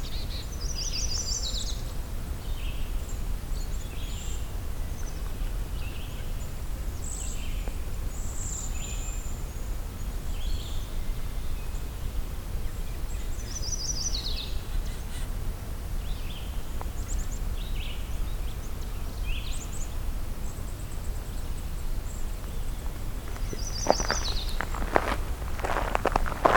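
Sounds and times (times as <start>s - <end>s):
low rumble: 0.0s - 26.5s
outdoor hiss: 0.0s - 26.5s
footsteps crunching on dry ground: 22.7s - 26.5s
chipping sparrow and dark-eyed junco songs: 23.3s - 25.0s.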